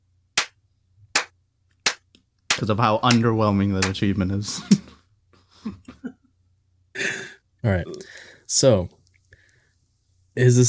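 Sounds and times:
person giving a deliberate slow clap: 0.4 - 4.0
speech: 2.6 - 4.8, 7.7 - 9.0, 10.4 - 10.6.

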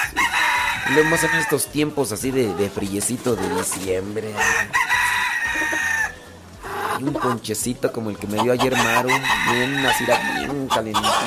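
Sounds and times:
rooster crowing: 0.0 - 1.6, 4.4 - 6.3, 8.7 - 11.2
flock of chickens clucking and squawking on a ranch at dawn: 0.0 - 11.2
speech: 0.9 - 4.9, 7.0 - 11.2.

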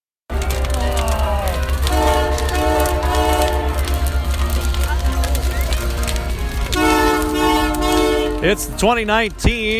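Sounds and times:
crowd voices: 0.3 - 9.7
train pulling into station with a steady low rumble: 0.3 - 9.7
train horn in long sustained blasts: 1.8 - 4.0, 6.7 - 9.0
speech: 8.4 - 9.7.

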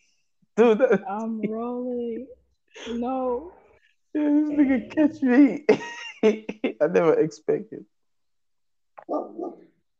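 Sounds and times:
speech: 0.6 - 7.9, 9.1 - 9.7
angry dog barking: 9.0 - 9.8
dog yapping: 9.1 - 9.7.

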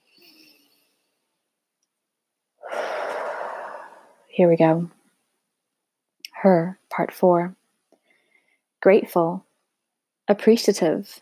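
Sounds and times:
long loud airy exhale: 2.6 - 4.3
slow audible breath in: 2.6 - 4.3
speech: 4.4 - 5.0, 6.4 - 7.6, 8.8 - 9.5, 10.3 - 11.2.

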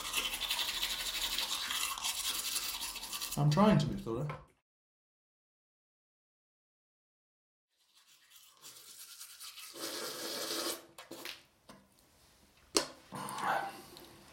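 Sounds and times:
gentle-bristled toothbrush scrubbing against teeth: 0.0 - 4.0, 7.7 - 11.3
speech: 3.4 - 4.5.

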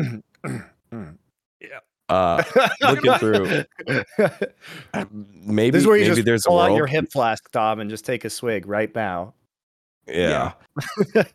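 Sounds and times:
person awkwardly clearing throat: 0.0 - 4.2
speech: 2.1 - 9.4, 10.1 - 11.3
laughter: 2.2 - 7.0, 10.3 - 11.3.

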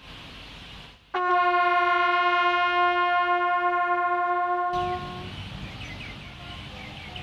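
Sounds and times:
bugle playing a long steady sol note: 1.1 - 5.3.

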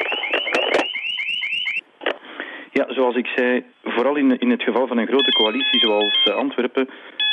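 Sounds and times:
home security alarm electronic siren: 0.0 - 1.8, 5.2 - 6.5, 7.2 - 7.3
speech: 2.8 - 7.2.

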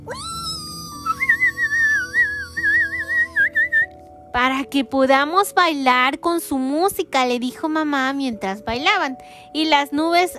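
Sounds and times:
person whistling a warbling birdlike tune imitating birdsong: 0.1 - 3.9
speech: 4.4 - 10.3.

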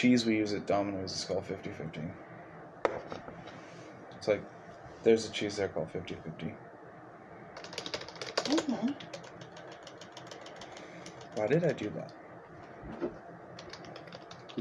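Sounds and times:
speech: 0.0 - 2.3, 4.2 - 6.7, 8.5 - 9.2, 11.4 - 12.2, 12.9 - 13.2
computer keyboard keys clacking: 7.6 - 11.9, 13.6 - 14.5.

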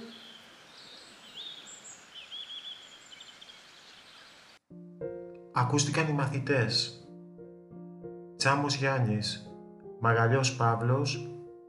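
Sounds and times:
small bird singing thin high chirps and trills: 0.0 - 4.6
steady outdoor hiss: 0.0 - 4.6
speech: 5.6 - 7.0, 8.4 - 11.3.

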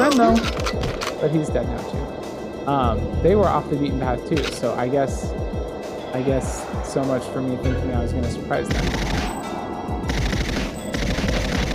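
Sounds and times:
speech: 0.2 - 9.2
rapid video game gunfire shooting an enemy from a distance: 8.7 - 9.4, 10.1 - 11.7.

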